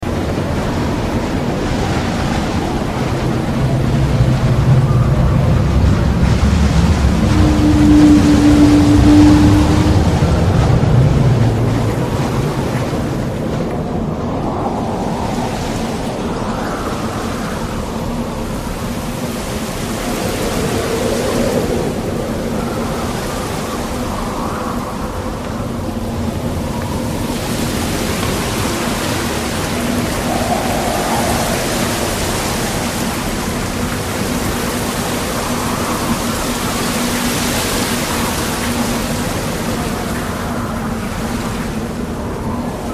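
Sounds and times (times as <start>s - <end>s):
sinister howling winds: 0.0s - 42.9s.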